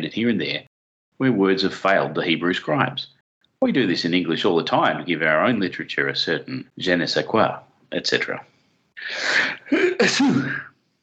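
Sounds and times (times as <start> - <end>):
speech: 0.0 - 10.7
person sneezing: 9.0 - 10.8.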